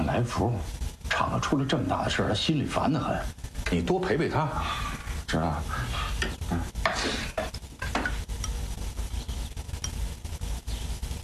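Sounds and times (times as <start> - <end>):
low sizzle of burning porridge: 0.0 - 11.2
speech: 0.2 - 7.2
spoon scraping and stirring a pot of burning porridge: 6.2 - 10.2.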